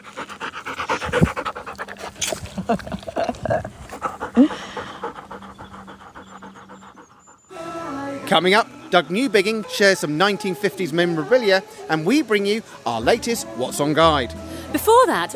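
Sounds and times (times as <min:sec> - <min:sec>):
female dog panting: 0:00.0 - 0:07.5
speech: 0:02.7 - 0:03.0, 0:04.4 - 0:04.7, 0:08.3 - 0:15.3.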